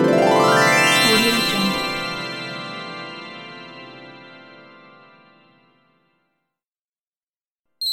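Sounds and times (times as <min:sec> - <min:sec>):
magic glissando bell: 0:00.1 - 0:04.3.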